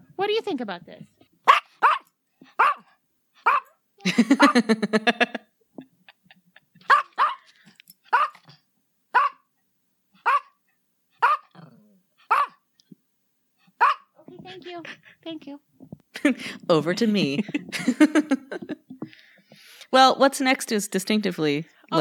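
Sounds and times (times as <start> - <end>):
speech: 0.2 - 1.2, 4.0 - 5.4, 16.3 - 18.1, 19.9 - 21.9
dog barking: 1.4 - 3.8, 6.9 - 7.5, 8.1 - 8.4, 9.1 - 9.5, 10.2 - 10.6, 11.2 - 11.6, 12.2 - 12.6, 13.8 - 14.2
laughter: 4.0 - 7.5, 14.3 - 15.3, 16.2 - 19.0
dog growling: 11.2 - 12.5.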